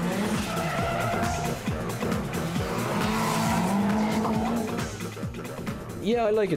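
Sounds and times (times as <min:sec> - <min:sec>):
drift car tire squeal: 0:00.0 - 0:05.0
drift car engine revving: 0:00.0 - 0:06.0
speech: 0:06.1 - 0:06.5.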